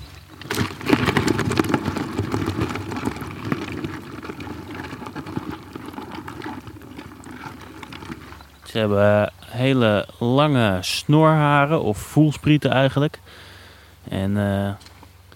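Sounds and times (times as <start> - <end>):
crayfish scrabbling in a bucket of water: 0.0 - 8.7
speech: 8.7 - 13.4, 14.1 - 14.9.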